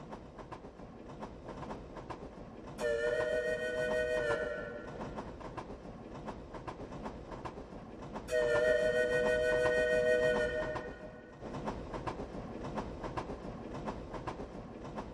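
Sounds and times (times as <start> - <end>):
train rolling along rails with clickety-clack: 0.0 - 15.1
loud train horn blast: 2.8 - 5.0, 8.3 - 11.3.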